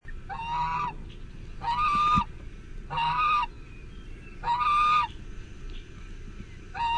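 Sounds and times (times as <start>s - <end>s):
low background rumble: 0.0s - 6.9s
goose honking: 0.3s - 1.0s, 1.6s - 2.3s, 2.9s - 3.6s, 4.4s - 5.2s, 6.7s - 6.9s.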